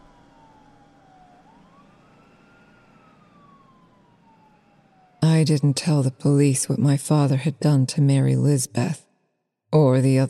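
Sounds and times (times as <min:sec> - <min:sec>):
emergency vehicle siren wailing: 0:00.0 - 0:08.9
speech: 0:05.4 - 0:09.0, 0:09.7 - 0:10.2.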